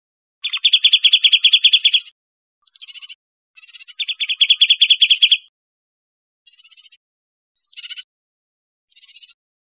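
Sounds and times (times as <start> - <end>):
bird trilling in Costa Rica: 0.4 - 5.5, 7.6 - 8.1.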